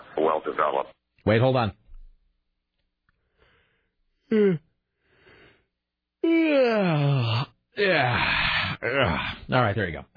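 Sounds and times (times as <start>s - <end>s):
speech: 0.4s - 1.8s, 4.3s - 4.7s, 6.2s - 10.1s
person yawning loudly and exaggeratedly: 4.3s - 4.7s, 6.2s - 9.5s.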